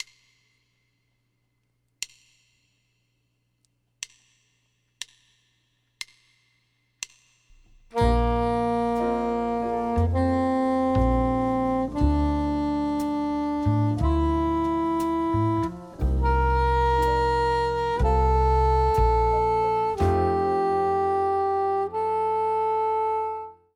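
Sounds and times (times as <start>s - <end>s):
B-flat soprano saxophone: 7.9s - 23.7s.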